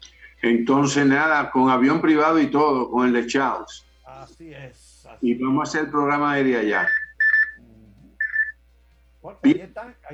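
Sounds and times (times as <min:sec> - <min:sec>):
speech: 0:00.4 - 0:07.0, 0:09.2 - 0:10.1
phone ringing for an incoming call: 0:06.6 - 0:07.6, 0:08.2 - 0:08.6.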